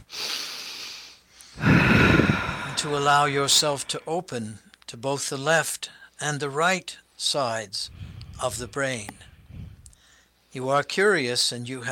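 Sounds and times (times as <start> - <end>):
deep breath: 0.0 - 4.1, 7.9 - 10.4
speech: 2.8 - 9.3, 10.6 - 11.9.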